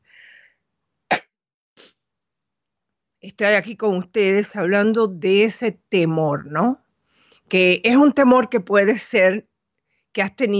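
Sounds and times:
sneeze: 0:01.1 - 0:02.0
speech: 0:03.2 - 0:06.8, 0:07.5 - 0:09.5, 0:10.1 - 0:10.5.

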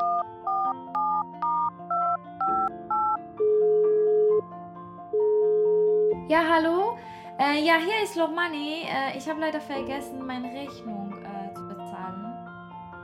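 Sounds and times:
telephone dialing beeps: 0:00.0 - 0:04.4
telephone ringing: 0:00.0 - 0:04.4, 0:05.2 - 0:06.1
speech: 0:06.3 - 0:11.0.

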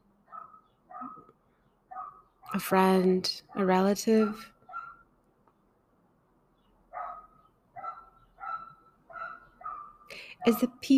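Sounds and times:
dog barking short and sharp: 0:00.3 - 0:02.3, 0:03.5 - 0:05.0, 0:06.9 - 0:10.6
speech: 0:02.6 - 0:04.5, 0:10.4 - 0:10.9.

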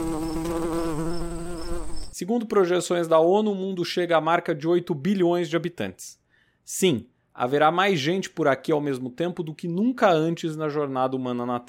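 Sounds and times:
fly buzzing as it takes off: 0:00.0 - 0:02.2
speech: 0:02.2 - 0:11.6.

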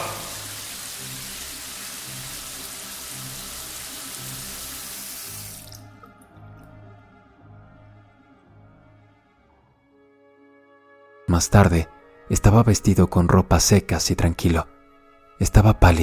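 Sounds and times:
cold shower water spraying: 0:00.0 - 0:05.9
speech: 0:11.4 - 0:14.7, 0:15.4 - 0:16.0.

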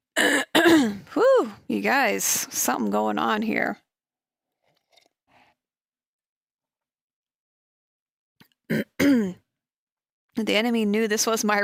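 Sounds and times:
person clearing throat: 0:00.2 - 0:01.1, 0:08.7 - 0:09.4
speech: 0:01.2 - 0:03.8, 0:10.4 - 0:11.6.

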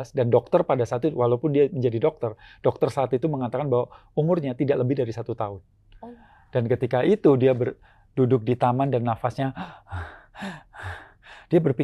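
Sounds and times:
speech: 0:00.0 - 0:11.8
voice imitating heavy labored breathing: 0:09.6 - 0:11.6.

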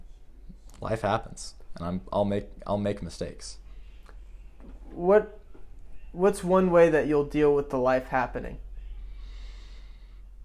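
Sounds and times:
speech: 0:00.8 - 0:03.6, 0:05.0 - 0:05.4, 0:06.1 - 0:08.6
deep breath in and out: 0:08.8 - 0:10.4.

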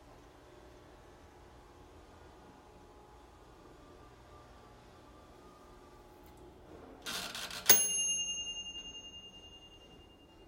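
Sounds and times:
microwave oven mechanical whir: 0:00.0 - 0:10.4
microwave oven ding: 0:07.7 - 0:10.4.

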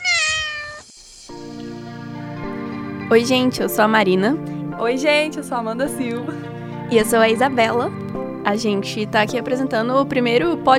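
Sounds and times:
cat meowing: 0:00.0 - 0:00.9
speech: 0:03.1 - 0:10.7.

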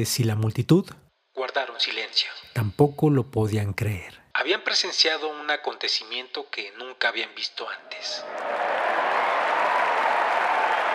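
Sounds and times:
speech: 0:00.0 - 0:08.6
crowd applauding: 0:07.9 - 0:10.9.

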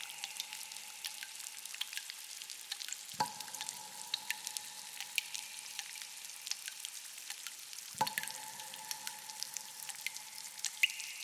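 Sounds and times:
water trickling and dripping from stalactites inside a cave: 0:00.0 - 0:11.2.

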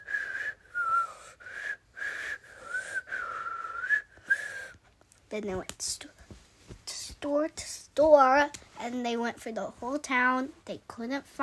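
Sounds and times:
person whistling a simple tune: 0:00.0 - 0:04.8
speech: 0:05.3 - 0:06.2, 0:07.2 - 0:11.4.

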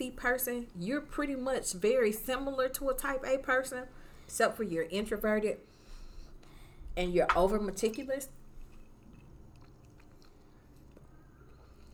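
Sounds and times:
speech: 0:00.0 - 0:05.7, 0:07.0 - 0:08.4
wet chewing of a tough fibrous piece of vegetable: 0:08.5 - 0:11.9.

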